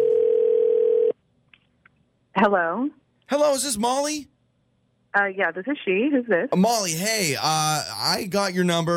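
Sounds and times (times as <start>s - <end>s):
telephone dial tone: 0.0s - 1.1s
speech: 2.4s - 4.3s, 5.2s - 8.9s.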